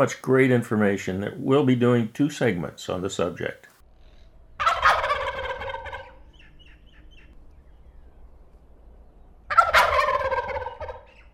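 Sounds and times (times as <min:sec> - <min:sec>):
speech: 0:00.0 - 0:03.7
male wild turkey gobbling: 0:04.6 - 0:07.4, 0:09.5 - 0:11.3.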